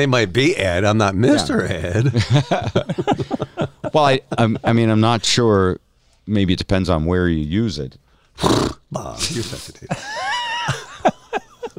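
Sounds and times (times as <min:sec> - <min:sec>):
speech: 0:00.0 - 0:10.8
laughter: 0:01.3 - 0:04.8, 0:09.2 - 0:11.7
horse nickering in short sputtering bursts: 0:08.4 - 0:08.8.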